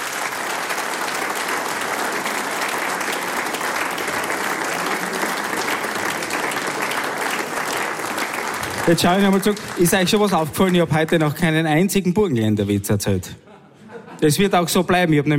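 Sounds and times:
large audience applause: 0.0s - 11.6s
speech: 8.9s - 13.4s, 14.2s - 15.3s
laughter: 13.4s - 14.6s.

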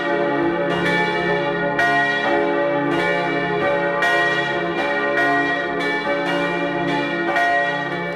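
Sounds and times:
church bells pealing in Mellau in the Bregenzerwald, Vorarlberg: 0.0s - 8.1s.

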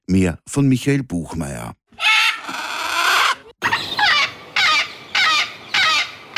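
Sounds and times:
speech: 0.1s - 1.8s
parrots screeching in trees along the Aga river near Schlatt: 2.0s - 6.3s.

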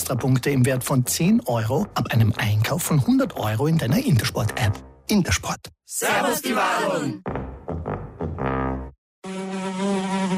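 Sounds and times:
speech: 0.1s - 7.5s
fly buzzing inside a Seat car: 9.2s - 10.3s.

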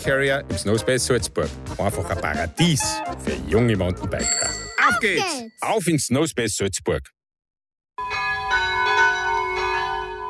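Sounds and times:
speech: 0.0s - 7.2s
church bells ringing at noon: 8.0s - 10.2s.

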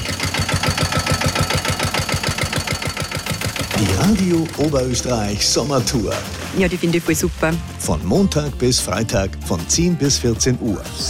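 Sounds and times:
car engine chugging while driving around a small roundabout: 0.0s - 6.8s
speech: 3.8s - 11.0s.

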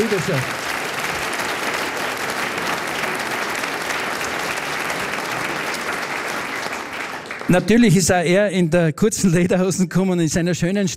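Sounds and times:
speech: 0.0s - 0.7s, 7.5s - 10.9s
audience applause: 0.0s - 8.2s.

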